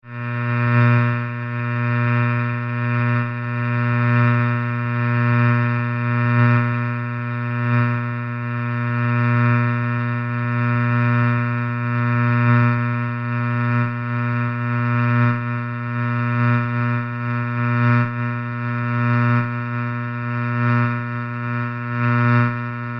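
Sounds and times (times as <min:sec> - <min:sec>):
oscillating high-pitched electric buzzing hum: 0:00.1 - 0:22.9.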